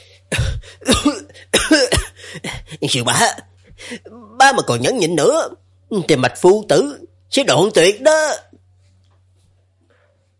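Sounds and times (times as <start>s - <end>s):
angry person violently coughing up blood: 0.3s - 3.0s
speech: 2.8s - 8.4s.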